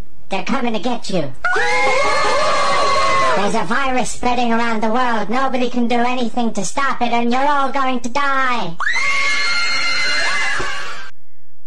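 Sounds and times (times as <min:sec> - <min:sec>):
speech: 0:00.3 - 0:02.1, 0:03.4 - 0:09.2
crowd of people screaming together in panic: 0:01.4 - 0:03.5, 0:08.8 - 0:11.1.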